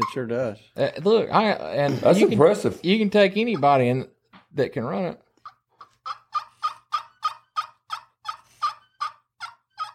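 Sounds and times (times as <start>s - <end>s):
speech: 0.2s - 5.2s
handheld turkey call producing turkey clucks: 2.8s - 4.1s, 5.4s - 9.9s.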